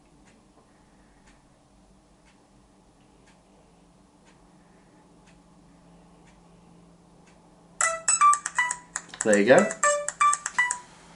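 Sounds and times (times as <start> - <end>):
mobile phone ringtone ringing outside a microwave oven: 7.8 - 10.9
speech: 9.2 - 9.8.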